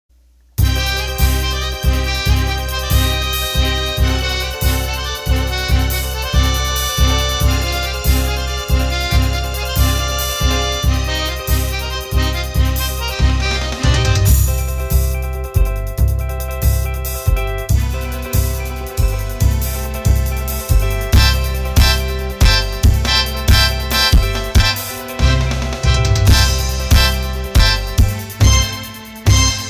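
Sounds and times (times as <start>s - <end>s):
Argentine accordion: 0.6s - 29.6s.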